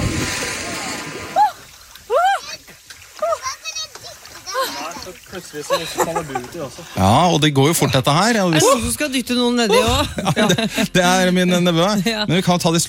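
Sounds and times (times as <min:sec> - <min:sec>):
water splashing as someone wades into the cold sea: 0:00.0 - 0:12.1
excited voices: 0:00.6 - 0:07.2
laughter: 0:04.5 - 0:08.9, 0:09.7 - 0:12.2
speech: 0:05.4 - 0:12.8.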